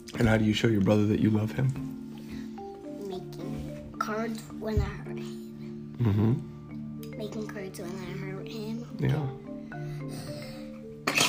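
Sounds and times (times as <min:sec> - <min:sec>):
speech: 0:00.1 - 0:02.0, 0:04.2 - 0:05.4, 0:06.0 - 0:06.5, 0:07.2 - 0:09.4
short voiced breath before a sneeze: 0:02.1 - 0:02.8, 0:09.5 - 0:11.0
sneeze: 0:11.1 - 0:11.2.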